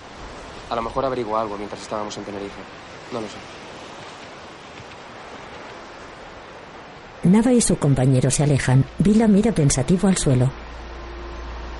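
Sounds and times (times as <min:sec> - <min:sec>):
water waves breaking against shoreline rocks: 0:00.0 - 0:09.3
speech: 0:00.7 - 0:03.6, 0:07.2 - 0:10.8.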